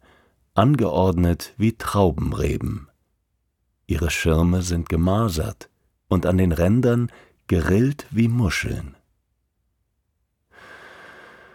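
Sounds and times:
deep breath drawn in during a forest walk: 0.0 - 0.4, 7.1 - 7.4, 10.5 - 11.5
speech: 0.6 - 2.9, 3.9 - 9.0.

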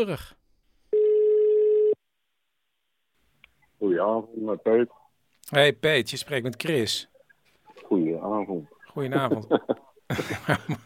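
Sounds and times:
speech: 0.0 - 0.4, 3.8 - 7.1, 7.8 - 10.8
ringing tone of a telephone call being placed: 0.9 - 2.0
laughter: 9.0 - 10.8.

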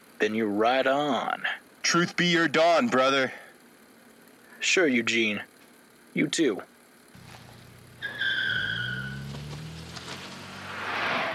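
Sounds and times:
speech: 0.2 - 3.4, 4.6 - 5.5, 6.1 - 6.7
car engine revving: 7.2 - 11.3
car speeding off: 7.2 - 11.3
car tires squealing while skidding: 7.2 - 11.3.

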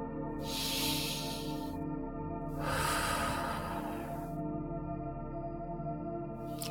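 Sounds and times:
gentle sustained musical tones: 0.0 - 6.7
deep cleansing breath in and out during a guided meditation: 0.4 - 1.8, 2.6 - 4.4.

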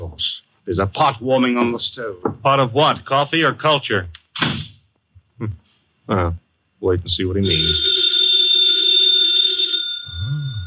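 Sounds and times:
speech: 0.7 - 4.2, 5.4 - 7.9
telephone bell ringing: 7.4 - 10.6.

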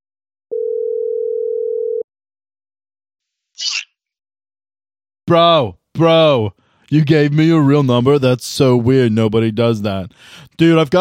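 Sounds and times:
cell phone line tone: 0.5 - 2.0
speech: 5.3 - 11.0.

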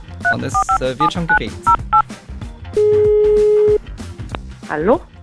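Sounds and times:
speech: 0.3 - 1.9, 4.7 - 5.1
dual-pitch telephone keypad beeps: 0.3 - 2.0
long steady telephone tone: 2.8 - 3.8.

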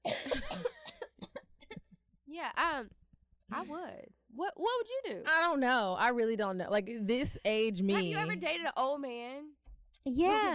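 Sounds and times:
harsh drawn-out coughing: 0.0 - 2.0
speech: 2.4 - 10.5.

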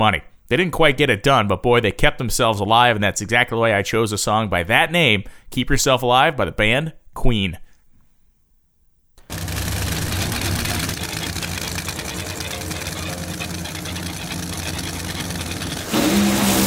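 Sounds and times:
speech: 0.0 - 7.6
drag racing car engine roaring at the starting line at Wild Horse Pass Motorsports Park: 9.2 - 16.6.

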